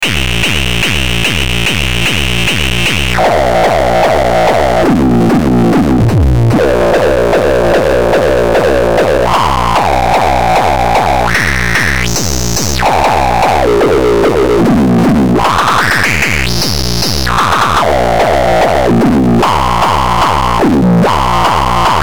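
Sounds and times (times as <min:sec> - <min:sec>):
synth core kick drum: 0:00.0 - 0:21.9.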